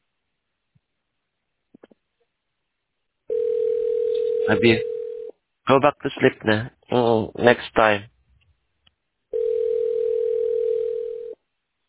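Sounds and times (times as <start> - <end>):
steady electronic telephone ringing tone: 3.3 - 5.3, 9.3 - 11.4
speech: 4.5 - 4.9, 5.7 - 8.1.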